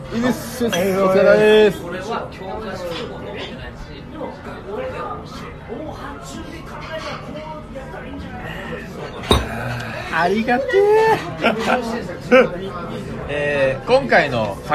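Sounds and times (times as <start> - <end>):
chatter and overlapping voices from a lively gathering: 0.0 - 14.7
speech: 0.1 - 3.2, 4.2 - 14.7
glasses clinking in a toast: 0.6 - 1.1, 9.0 - 9.9.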